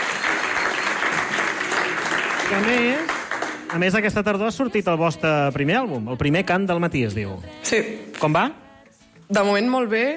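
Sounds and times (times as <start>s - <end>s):
audience applause: 0.0s - 4.0s
speech: 2.5s - 3.1s, 3.7s - 8.6s, 9.3s - 10.1s.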